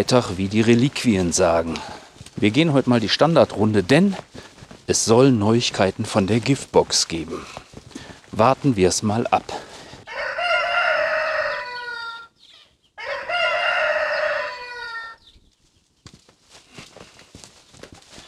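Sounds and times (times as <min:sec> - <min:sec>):
speech: 0:00.0 - 0:07.6, 0:08.3 - 0:09.7
rooster crowing: 0:10.0 - 0:12.4, 0:13.0 - 0:15.3.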